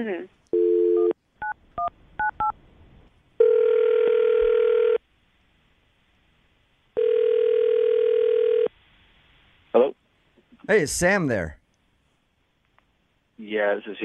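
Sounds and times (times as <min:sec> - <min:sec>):
speech: 0:00.0 - 0:00.4, 0:10.7 - 0:11.6, 0:13.4 - 0:14.0
phone dial tone: 0:00.6 - 0:01.2, 0:03.4 - 0:05.0, 0:07.0 - 0:08.7
ringback tones from an outgoing phone call: 0:03.4 - 0:05.0, 0:07.0 - 0:08.7.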